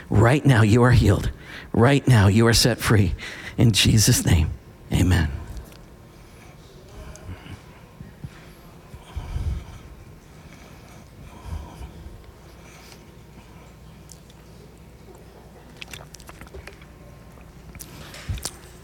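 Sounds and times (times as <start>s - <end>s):
speech: 0.1s - 5.4s
person chewing communion bread: 10.4s - 18.8s.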